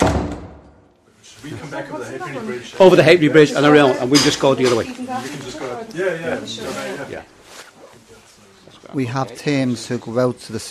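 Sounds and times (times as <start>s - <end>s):
heavy door pushed open with a thud: 0.0s - 0.8s
speech: 1.4s - 7.4s, 8.9s - 10.6s.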